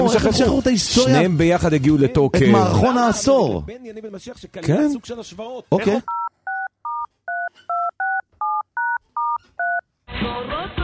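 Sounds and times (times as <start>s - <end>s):
speech: 0.1s - 6.2s
telephone keypad dialing tones: 6.1s - 9.8s.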